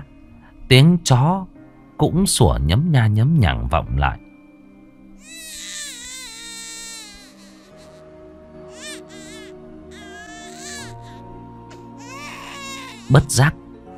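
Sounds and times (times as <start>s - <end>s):
speech: 0.7s - 4.2s, 13.1s - 13.6s
baby boy crying upstairs: 5.2s - 13.3s.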